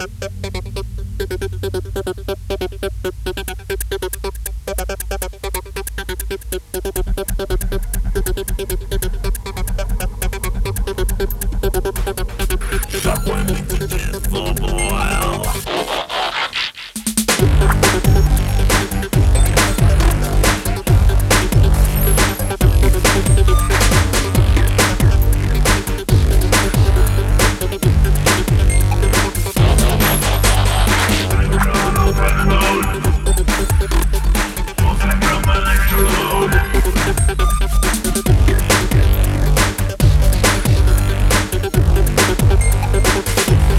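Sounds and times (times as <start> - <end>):
8-bit Amiga electronic music: 0.0 - 43.7.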